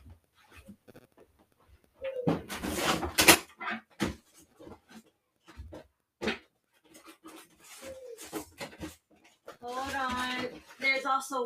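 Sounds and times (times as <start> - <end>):
rummaging through a drawer of small objects: 2.3 - 11.4
small objects clicking, knocking and clattering: 2.3 - 11.4
speech: 11.2 - 11.4.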